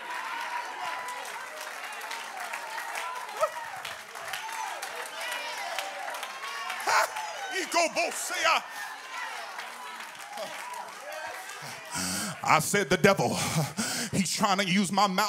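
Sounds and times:
audience clapping hands: 0.0 - 13.0
many voices calling out and cheering: 0.0 - 13.4
louder shouts rising above the crowd: 3.0 - 12.3
speech: 7.7 - 8.9, 12.5 - 15.2.

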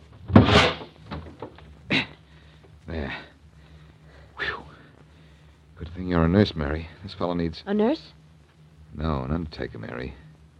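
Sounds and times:
heavy metal door of a wrecked car forced open: 0.3 - 1.2
speech: 6.0 - 8.2, 9.0 - 10.2.

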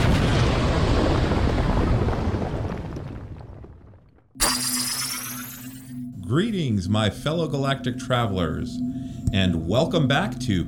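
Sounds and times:
massive earth-shattering explosion rumbling: 0.0 - 3.6
bright sustained tonal sound: 4.4 - 6.0
speech: 6.3 - 10.6.

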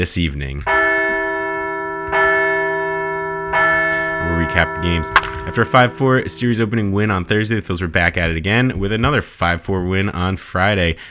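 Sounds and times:
speech: 0.0 - 0.8, 4.4 - 11.0
large bell ringing: 0.7 - 7.4.

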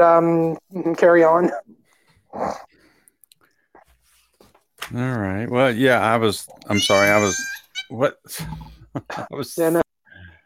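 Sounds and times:
speech: 0.0 - 1.7, 2.3 - 2.7, 4.9 - 9.8
cat meowing: 6.6 - 8.0.

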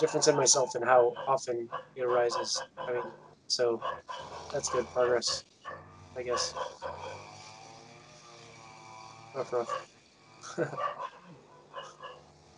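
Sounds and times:
speech: 0.0 - 5.5, 6.2 - 7.3, 9.4 - 11.1
dog barking in the distance: 0.0 - 7.4, 9.5 - 9.9, 10.8 - 12.4.

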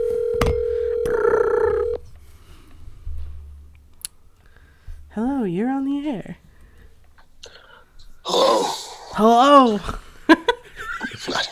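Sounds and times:
dialing beeps: 0.0 - 2.0
steady electronic tone from a phone line: 0.0 - 2.1
phone line hiss: 2.0 - 11.5
speech: 5.2 - 6.4, 8.6 - 10.0
laughter: 8.3 - 11.5.

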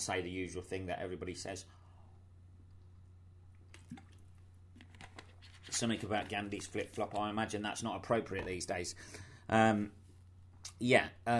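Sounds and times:
speech: 0.0 - 1.8, 5.7 - 10.0, 10.7 - 11.3
person sipping and swallowing water: 3.5 - 4.4.

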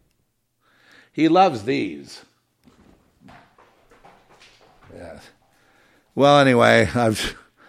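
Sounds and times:
speech: 1.1 - 2.3, 4.9 - 5.4, 6.2 - 7.4
ball bouncing on the ground: 2.6 - 5.4.

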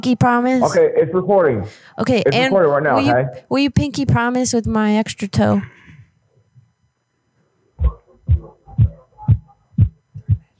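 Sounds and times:
speech: 0.0 - 5.8
simple homemade music beat playing quietly from a phone speaker: 7.8 - 10.4.

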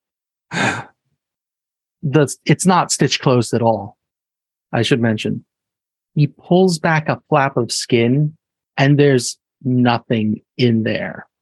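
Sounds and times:
sharp breathy gasp: 0.5 - 1.0
speech: 2.0 - 4.0, 4.7 - 5.5, 6.2 - 11.3.

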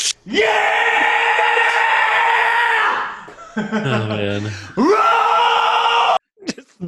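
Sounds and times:
speech: 0.2 - 0.6, 3.6 - 4.9
man screaming on a recorded bonus track: 0.3 - 3.2, 4.8 - 6.2
laughter: 3.2 - 4.9.

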